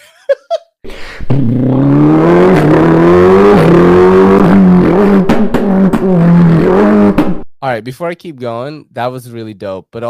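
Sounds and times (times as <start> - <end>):
laughter: 0.0 - 0.7
person beatboxing a revving car engine: 1.2 - 7.3
speech: 7.8 - 10.0.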